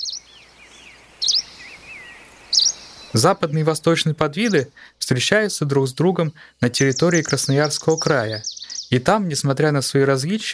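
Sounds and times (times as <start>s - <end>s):
greenish warbler of the eastern subspecies singing: 0.0s - 5.1s, 5.9s - 9.5s
speech: 3.1s - 10.5s.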